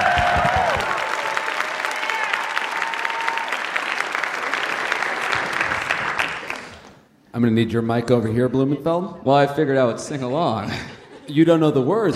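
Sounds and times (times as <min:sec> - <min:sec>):
whoops and cheers: 0:00.0 - 0:03.9
audience applauding: 0:00.0 - 0:07.0
speech: 0:07.4 - 0:12.1
laughter: 0:10.3 - 0:12.1.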